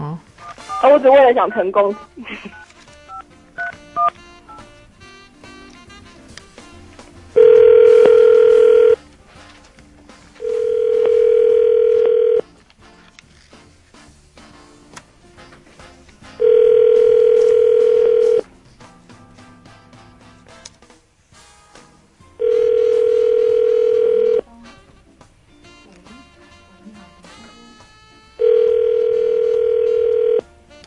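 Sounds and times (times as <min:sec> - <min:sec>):
speech: 0:00.8 - 0:02.5
telephone ringback tone during outgoing call: 0:07.4 - 0:09.0, 0:10.4 - 0:12.4, 0:16.4 - 0:18.4, 0:22.4 - 0:24.4, 0:28.4 - 0:30.4.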